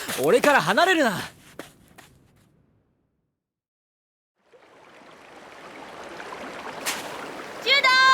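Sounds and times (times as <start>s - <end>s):
speech: 0.1s - 1.4s
flowing river water rushing: 4.4s - 8.1s.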